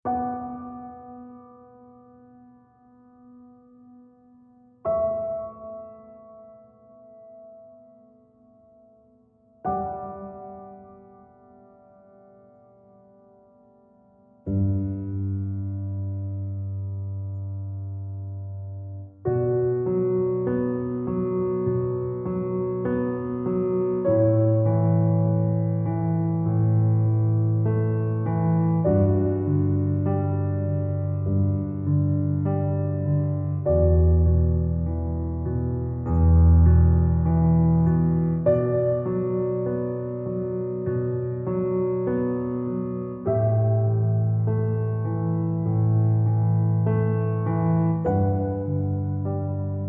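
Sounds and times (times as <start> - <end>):
solo piano: 0.0 - 49.8.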